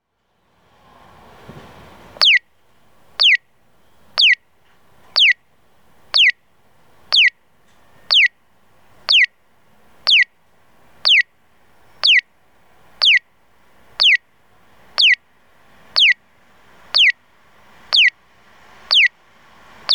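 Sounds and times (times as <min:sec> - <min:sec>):
bird chirping in Tottori: 0:02.2 - 0:02.5, 0:03.2 - 0:04.4, 0:05.0 - 0:05.4, 0:06.1 - 0:06.4, 0:07.1 - 0:07.4, 0:08.0 - 0:08.4, 0:09.0 - 0:09.4, 0:10.0 - 0:10.3, 0:11.0 - 0:12.3, 0:13.0 - 0:13.3, 0:14.0 - 0:14.2, 0:14.9 - 0:15.2, 0:15.9 - 0:16.2, 0:16.9 - 0:17.2, 0:17.9 - 0:18.2, 0:18.8 - 0:19.2.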